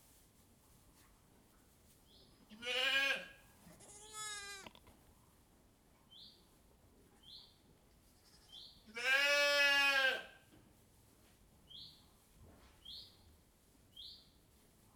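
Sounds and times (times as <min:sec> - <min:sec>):
sheep bleating in a sheepfold with straw: 0:02.5 - 0:04.7, 0:08.3 - 0:10.3.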